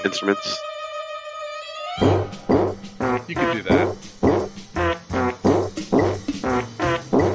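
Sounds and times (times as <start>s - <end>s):
speech: 0.0s - 0.7s, 3.3s - 4.1s
buzzy fart-like sound effects pitched to play a melody: 2.0s - 7.3s.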